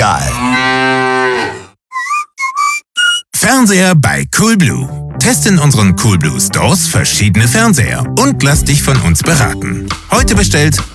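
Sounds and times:
mooing sound from a mooing milk bottle: 0:00.2 - 0:02.2
short high whistling tones: 0:01.9 - 0:03.4
speech: 0:03.6 - 0:10.9.

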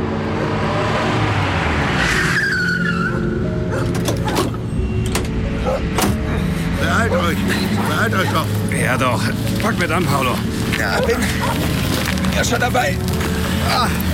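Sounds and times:
car engine droning in a town at night: 0:00.0 - 0:14.1
car tire squeal: 0:00.9 - 0:08.4
speech: 0:08.0 - 0:14.1.

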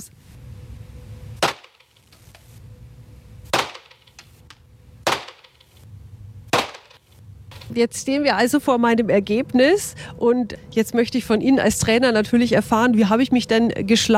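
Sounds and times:
low rumble: 0:00.0 - 0:14.1
gunshots at shooting range: 0:01.4 - 0:01.9, 0:03.5 - 0:04.1, 0:05.0 - 0:05.6, 0:06.5 - 0:07.0
speech: 0:07.7 - 0:14.1.

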